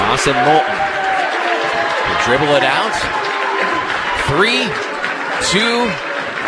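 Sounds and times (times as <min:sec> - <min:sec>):
high school basketball crowd in a gymnasium in Chippewa Falls cheering and clapping: 0:00.0 - 0:06.4
scattered shouts from basketball crowd: 0:00.0 - 0:06.4
speech: 0:00.2 - 0:01.0, 0:01.7 - 0:06.1.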